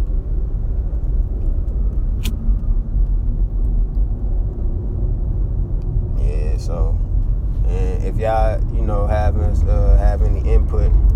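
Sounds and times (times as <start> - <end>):
heavy highway traffic: 0.0 - 11.1
sharp click: 2.2 - 2.7
speech: 6.7 - 7.0, 8.2 - 11.1.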